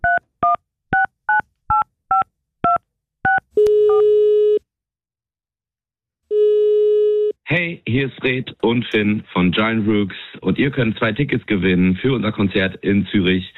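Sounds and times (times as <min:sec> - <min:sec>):
two-tone telephone keypad beeps dialing a number: 0:00.0 - 0:04.1
long flat telephone tone: 0:03.3 - 0:04.6, 0:06.3 - 0:07.4
speech: 0:07.6 - 0:13.5.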